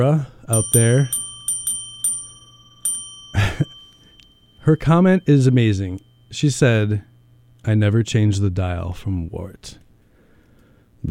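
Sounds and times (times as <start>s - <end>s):
speech: 0.0s - 1.2s, 4.7s - 9.8s
small bell dinging: 0.5s - 9.3s.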